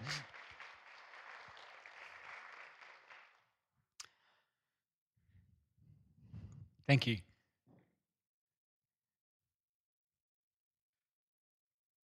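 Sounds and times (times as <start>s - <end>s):
small group clapping after a reading: 0.0s - 3.5s
speech: 6.9s - 7.3s.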